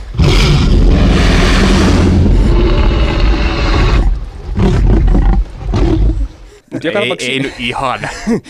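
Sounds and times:
Tyrannosaurus rex roar film sound effect: 0:00.1 - 0:06.3
speech: 0:06.8 - 0:08.4
laughter: 0:07.3 - 0:08.4.

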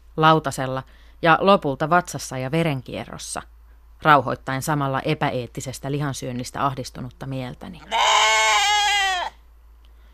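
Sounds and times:
speech: 0:00.2 - 0:08.1
sheep bleating: 0:07.8 - 0:09.4.

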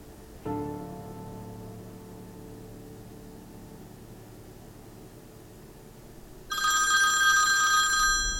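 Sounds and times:
low steady hum: 0:00.0 - 0:08.3
telephone with bright buzzing electronic ring: 0:06.5 - 0:08.3.

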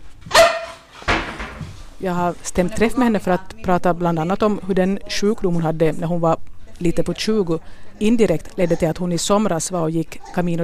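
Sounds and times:
bull terrier barking in an apartment in central Jakobstad: 0:00.3 - 0:00.9
speech: 0:02.0 - 0:10.6.

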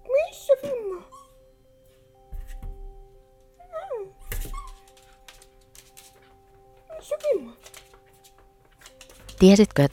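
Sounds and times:
dog whimpering and yipping in short high falling whines: 0:00.6 - 0:01.5, 0:03.6 - 0:05.1
speech: 0:09.4 - 0:09.9.

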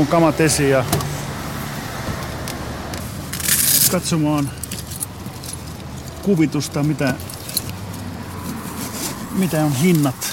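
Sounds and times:
speech: 0:00.0 - 0:01.1, 0:03.9 - 0:04.6, 0:06.3 - 0:07.3, 0:09.4 - 0:10.3
outdoor noise at Tammela market square: 0:00.0 - 0:10.3
steady low rumble of a car: 0:00.0 - 0:10.3
car keys jangling while locking car: 0:03.3 - 0:06.2, 0:07.0 - 0:08.0.

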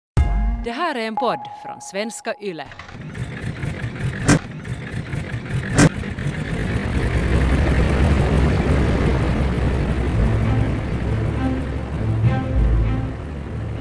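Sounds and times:
speech: 0:00.6 - 0:03.2
small propeller airplane engine droning: 0:02.7 - 0:13.7.

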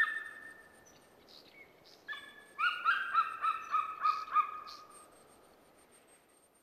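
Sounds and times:
golden eagle yelps: 0:00.0 - 0:00.7, 0:02.1 - 0:04.9.

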